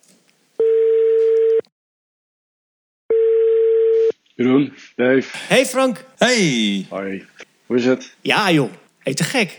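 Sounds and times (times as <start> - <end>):
telephone ringback tone while placing a call: 0.6 - 1.6, 3.1 - 4.1
speech: 4.4 - 9.5.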